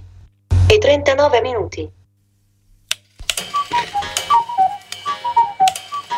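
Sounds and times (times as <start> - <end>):
speech: 0.9 - 2.0
atomic clock in a radio time signal ticking: 3.3 - 6.1.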